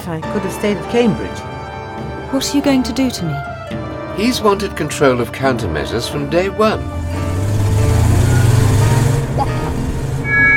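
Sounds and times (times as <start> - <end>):
speech: 0.0 - 7.2
car engine rumbling while driving: 6.8 - 10.5.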